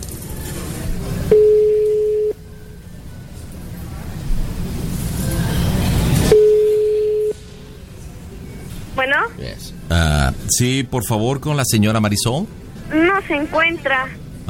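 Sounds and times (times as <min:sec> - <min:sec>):
low noise: 0:00.0 - 0:14.4
telephone ringing tones on a call to a home phone: 0:01.3 - 0:02.4, 0:06.3 - 0:07.4
speech: 0:10.5 - 0:14.2.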